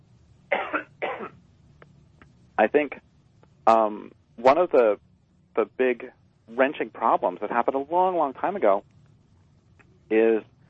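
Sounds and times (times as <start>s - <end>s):
person coughing: 0.5s - 1.4s
speech: 2.6s - 3.1s, 3.7s - 8.9s, 10.1s - 10.5s.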